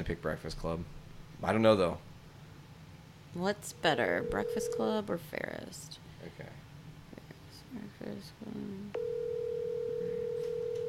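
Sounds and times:
speech: 0.0 - 2.1, 3.3 - 6.6, 7.7 - 9.3
faint noise: 0.0 - 10.8
telephone line tone: 4.2 - 5.0, 9.0 - 10.8.

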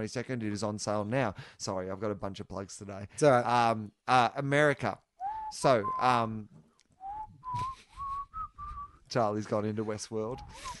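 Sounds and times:
speech: 0.0 - 6.6, 9.1 - 10.7
person whistling: 5.2 - 6.2, 7.0 - 9.0, 10.4 - 10.7.

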